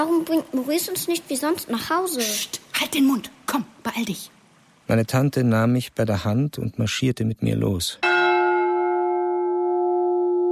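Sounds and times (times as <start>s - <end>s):
speech: 0.0s - 8.1s
church bell striking single strokes over a village: 8.0s - 10.5s.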